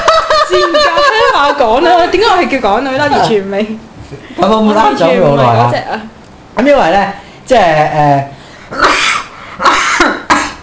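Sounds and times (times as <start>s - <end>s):
laughter: 0.0s - 1.9s
speech: 1.6s - 9.0s
person coughing: 8.7s - 10.6s.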